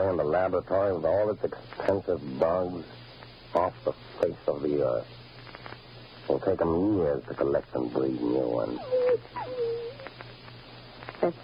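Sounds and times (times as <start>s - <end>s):
speech: 0.0s - 5.2s, 6.3s - 9.7s, 11.2s - 11.4s
low hum: 0.0s - 11.4s
dog whimpering: 8.4s - 10.2s.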